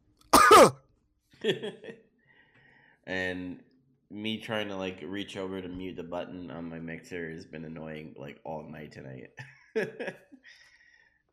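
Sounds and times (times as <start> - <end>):
gravelly throat clearing: 0.4 - 0.8
person coughing: 0.4 - 0.8
speech: 0.6 - 0.8, 1.4 - 2.1, 3.1 - 10.7.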